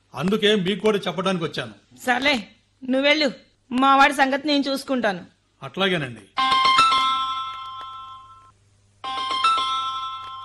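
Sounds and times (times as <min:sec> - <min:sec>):
speech: 0:00.2 - 0:06.6
mobile phone ringtone: 0:06.4 - 0:10.4.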